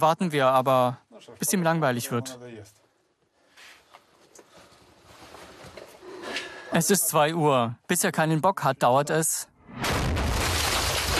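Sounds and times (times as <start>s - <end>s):
speech: 0.0s - 2.8s, 6.7s - 9.9s
loud game explosion or heavy gunfire blast: 9.6s - 11.1s.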